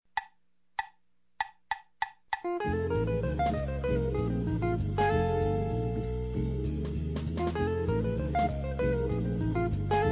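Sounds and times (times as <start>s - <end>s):
jazz blues riffs: 2.4s - 10.1s.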